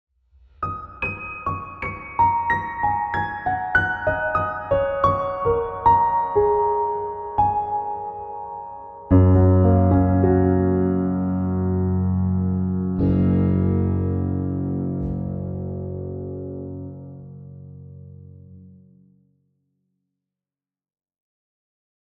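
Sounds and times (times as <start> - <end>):
piano: 0.2 - 19.7
guitar: 9.1 - 18.4.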